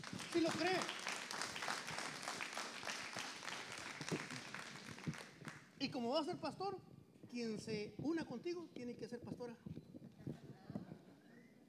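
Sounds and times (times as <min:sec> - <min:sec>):
audience applauding: 0:00.0 - 0:05.7
speech: 0:00.4 - 0:01.0, 0:05.8 - 0:09.7.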